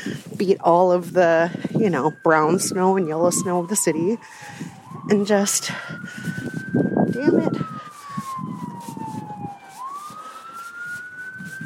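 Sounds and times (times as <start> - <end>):
speech: 0.0 - 7.8
emergency siren wailing on a snowy city street: 0.0 - 11.6
low rumble of city traffic: 0.0 - 11.6.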